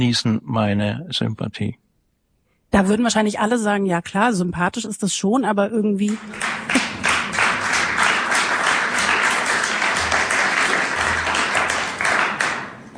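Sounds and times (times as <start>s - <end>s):
speech: 0.0s - 1.8s, 2.7s - 7.1s
audience applause: 6.1s - 12.9s.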